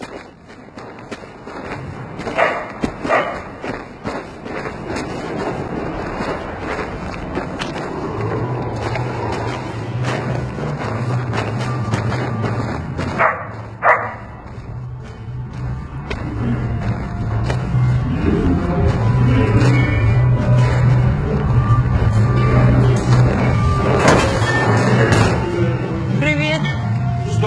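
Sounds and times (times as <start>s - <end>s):
footsteps: 0.0s - 27.3s
dog barking outdoors: 2.3s - 3.5s, 13.2s - 14.3s.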